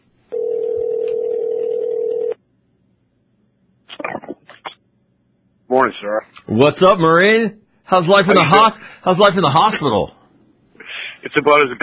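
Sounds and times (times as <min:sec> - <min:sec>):
ringback tone of an outgoing phone call: 0:00.3 - 0:02.4
speech: 0:05.8 - 0:10.2, 0:11.2 - 0:11.8.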